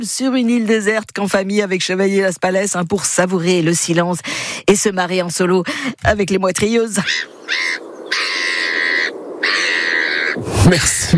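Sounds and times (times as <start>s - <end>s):
speech: 0.0s - 7.9s, 10.4s - 11.1s
seagulls calling: 6.9s - 11.1s.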